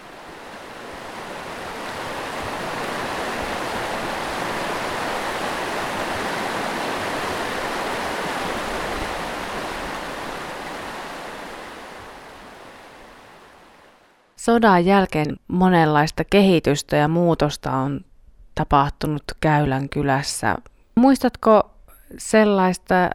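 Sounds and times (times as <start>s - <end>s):
rushing river rapids: 0.0s - 14.2s
speech: 14.4s - 23.1s.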